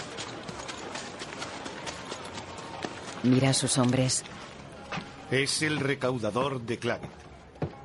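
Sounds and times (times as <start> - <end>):
horses' hooves clip-clopping with two men riding on horseback: 0.0 - 6.0
speech: 3.2 - 4.5, 5.3 - 7.3.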